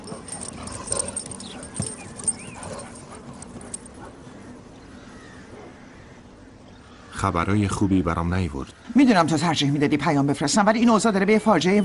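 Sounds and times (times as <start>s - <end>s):
dogs of a newer breed whimpering and whining: 0.0s - 4.2s
steady noisy background: 0.0s - 11.8s
speech: 7.2s - 11.8s.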